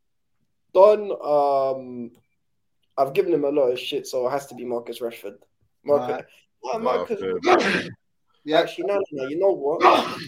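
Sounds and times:
speech: 0:00.8 - 0:02.2, 0:03.0 - 0:10.2
person sneezing: 0:07.4 - 0:08.0, 0:09.8 - 0:10.2.

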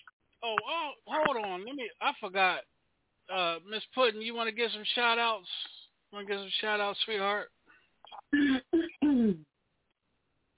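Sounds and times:
speech: 0:00.4 - 0:02.7, 0:03.3 - 0:07.6, 0:08.3 - 0:09.5
woman clearing her throat: 0:08.2 - 0:09.4.

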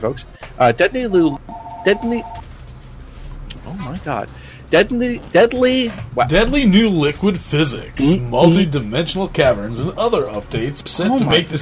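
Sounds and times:
speech: 0:00.0 - 0:02.4, 0:03.6 - 0:11.6
phone electronic ringtone beep: 0:01.5 - 0:02.4.

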